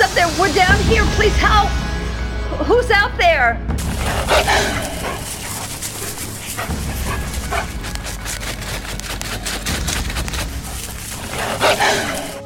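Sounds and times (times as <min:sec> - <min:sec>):
speech: 0:00.2 - 0:01.8, 0:02.6 - 0:04.9
wolves barking and yipping: 0:03.8 - 0:12.4.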